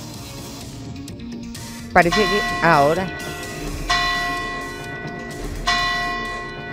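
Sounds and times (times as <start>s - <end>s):
speech: 2.0s - 3.3s
deep church bell strikes: 2.0s - 6.7s.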